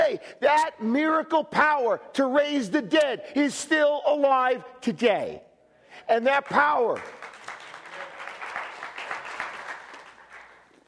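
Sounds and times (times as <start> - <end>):
speech: 0.2 - 7.3
crowd applauding: 7.0 - 10.8.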